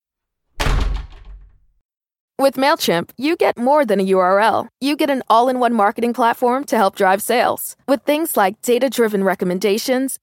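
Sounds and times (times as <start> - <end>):
door slamming shut: 0.6 - 1.7
speech: 2.4 - 10.2.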